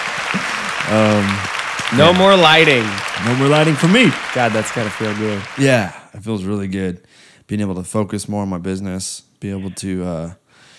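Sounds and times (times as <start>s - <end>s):
small group clapping: 0.0s - 5.9s
person cheering: 0.3s - 6.0s
speech: 0.9s - 10.4s.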